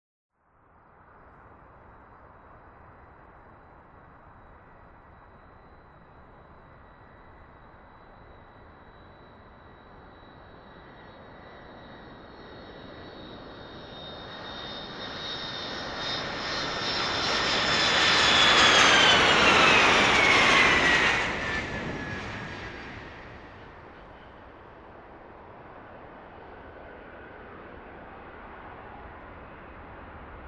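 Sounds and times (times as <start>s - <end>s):
jet plane landing: 2.7s - 30.4s.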